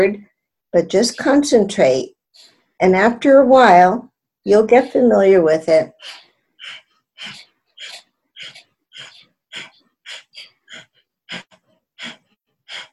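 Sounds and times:
speech: 0.0 - 7.4
rapid rhythmic breathing from a Kundalini yoga breath exercise: 1.0 - 12.9
sharp forceful exhales as the stomach pulls in: 6.0 - 12.9.

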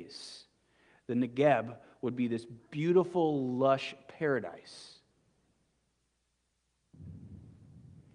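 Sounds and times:
speech: 1.1 - 5.0
thunder rumbling: 7.0 - 8.1.

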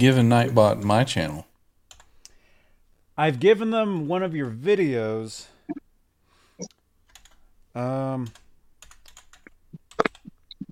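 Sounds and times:
speech: 0.0 - 1.5, 3.2 - 5.8, 7.7 - 8.4
typing on a computer keyboard: 1.9 - 2.1, 7.1 - 7.4, 8.2 - 10.3
person hesitant vocal sound: 9.5 - 10.7.

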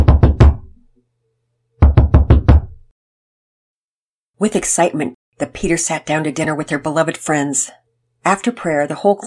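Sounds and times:
knocking on a door: 0.0 - 0.7, 1.8 - 2.9
speech: 4.4 - 9.2.

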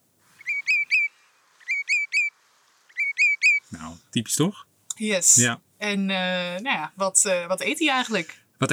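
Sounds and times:
common redshank calling with whistled notes: 0.3 - 3.7
speech: 3.7 - 8.7.

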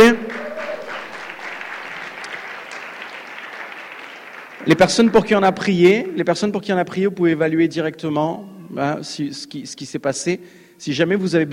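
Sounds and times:
congregation applauding at a church prayer service: 0.0 - 6.2
speech: 4.7 - 11.5.

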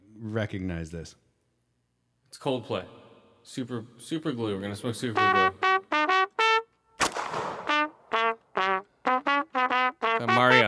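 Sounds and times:
speech: 0.2 - 1.3, 2.3 - 5.6
short game tune in bright brassy trumpet notes: 5.0 - 6.8, 7.6 - 10.6
loud gunshot blast: 7.0 - 7.7.

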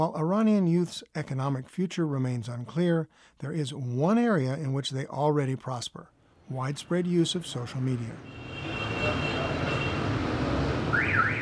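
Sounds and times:
speech: 0.0 - 9.2
dense street traffic roar: 6.2 - 11.3
car horns honking in traffic jam: 8.2 - 11.3.

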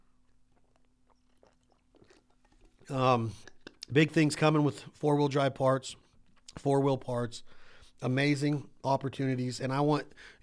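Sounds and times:
person sipping a drink: 0.1 - 3.9
slurping swallows: 0.6 - 3.9
soft wet mouth clicks: 0.6 - 4.0
speech: 2.9 - 6.0, 6.6 - 10.4.

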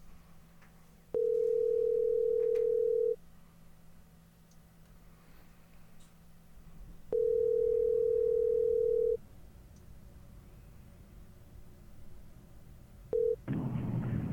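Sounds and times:
phone line ringback tones: 1.2 - 3.2, 7.1 - 9.2, 13.2 - 13.4.

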